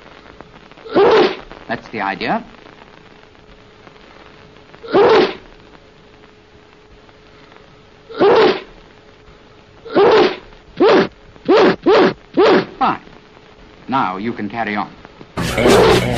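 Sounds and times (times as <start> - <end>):
person sneezing: 0.9 - 1.4, 4.8 - 5.4, 8.1 - 8.7, 9.9 - 12.8
speech: 1.7 - 2.6, 13.9 - 15.0, 15.6 - 16.1.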